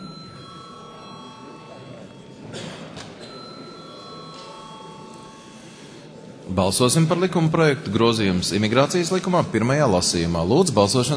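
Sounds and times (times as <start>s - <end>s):
parliament chamber bell ringing before a vote: 0.0s - 5.9s
faint murmuring: 0.0s - 10.6s
speech: 6.6s - 11.1s.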